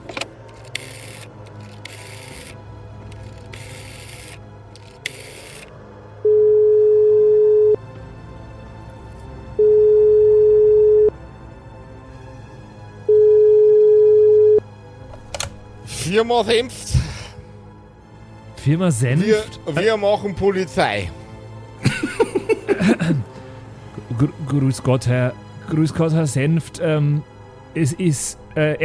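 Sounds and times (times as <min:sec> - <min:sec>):
telephone ringback tone beeps while calling: 0:06.2 - 0:07.8, 0:09.6 - 0:11.1, 0:13.1 - 0:14.6
speech: 0:16.2 - 0:17.0, 0:18.6 - 0:21.2, 0:22.8 - 0:23.3, 0:24.2 - 0:28.8
laughter: 0:21.8 - 0:23.3.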